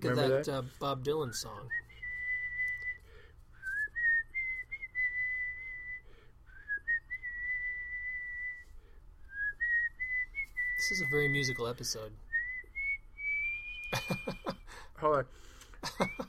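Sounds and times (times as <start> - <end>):
speech: 0.0 - 1.8, 10.9 - 12.3, 13.9 - 16.2
low steady hum: 0.0 - 14.8
person whistling a slow rock song melody: 1.6 - 8.7, 9.3 - 14.4
laughter: 13.9 - 14.7, 15.8 - 16.2.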